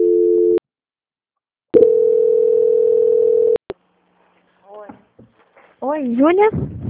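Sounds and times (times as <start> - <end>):
telephone tones while a call is transferred: 0.0 - 0.6, 1.8 - 3.6
speech: 6.0 - 6.7.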